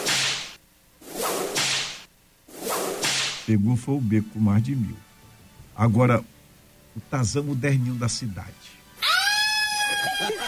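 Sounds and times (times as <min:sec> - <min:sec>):
whip cracking with a hissing swish: 0:00.0 - 0:03.5
speech: 0:03.5 - 0:05.1, 0:05.8 - 0:06.4, 0:07.0 - 0:08.8, 0:10.1 - 0:10.4
laughter: 0:09.6 - 0:10.4.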